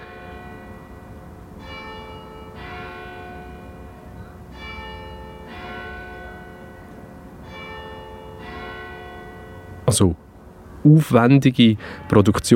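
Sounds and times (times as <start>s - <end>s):
bells of a Catholic and a Reformed church ringing: 0.0s - 10.6s, 11.8s - 12.5s
speech: 9.9s - 12.5s.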